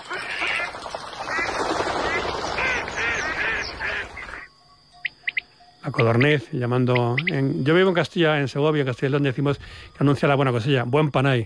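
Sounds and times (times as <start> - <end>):
flock of ducks quacking on lagoons: 0.0 - 4.5
busy wetland background: 0.0 - 11.4
speech: 5.9 - 11.4.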